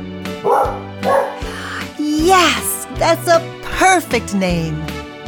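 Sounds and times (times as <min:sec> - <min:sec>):
farm dog barking: 0:00.4 - 0:01.9
speech: 0:02.5 - 0:04.9.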